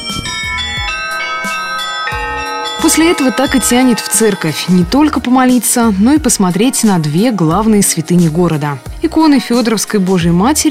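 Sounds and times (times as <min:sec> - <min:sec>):
several church bells ringing from a belfry: 0:00.0 - 0:08.2
speech: 0:02.9 - 0:10.6.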